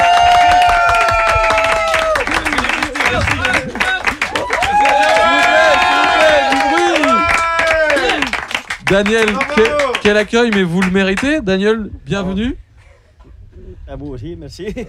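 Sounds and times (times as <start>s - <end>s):
shouted whoops: 0.0s - 8.4s
large audience clapping: 0.0s - 11.4s
speech: 8.9s - 12.6s, 13.9s - 14.8s.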